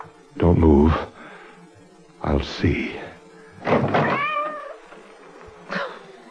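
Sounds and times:
speech: 0.4s - 1.2s, 2.4s - 3.0s, 3.6s - 4.0s
cat meowing at the front door: 4.0s - 4.8s.

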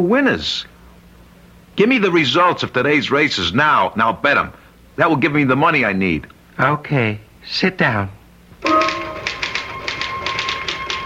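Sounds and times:
speech: 0.0s - 0.7s, 1.8s - 8.8s
crisp typing keystrokes: 8.7s - 11.0s.

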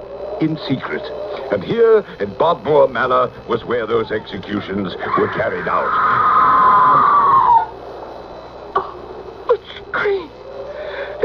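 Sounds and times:
speech: 0.4s - 6.3s
loud drawn-out high-pitched scream: 3.8s - 7.8s.

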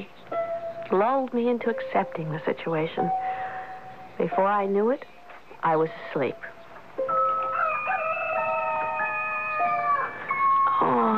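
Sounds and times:
speech: 0.9s - 3.4s, 4.2s - 7.1s
rooster crowing: 7.1s - 10.6s.

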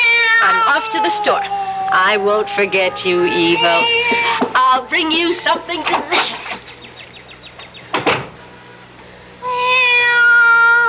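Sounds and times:
cat meowing: 0.0s - 4.6s, 9.4s - 10.8s
speech: 0.8s - 6.6s.

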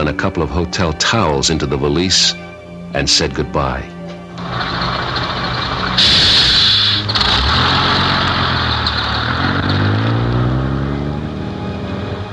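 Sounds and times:
speech: 0.1s - 4.8s
large bus engine rumbling while driving: 3.7s - 12.3s
loud burst of hissing air from a bus: 6.0s - 7.1s.

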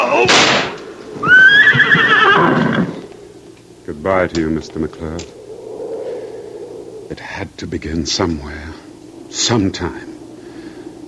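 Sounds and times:
horse whinnying: 1.2s - 3.1s
speech: 4.0s - 5.4s, 7.1s - 10.1s.

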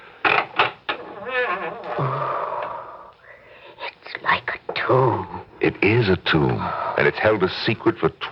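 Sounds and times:
creaking door opening: 0.3s - 2.0s
speech: 1.3s - 2.5s, 4.9s - 8.2s.

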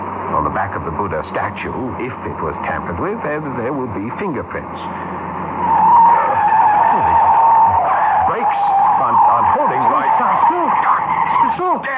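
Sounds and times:
car skidding as its handbrake fails: 0.0s - 11.9s
speech: 0.4s - 5.3s
people shouting: 5.6s - 11.9s.

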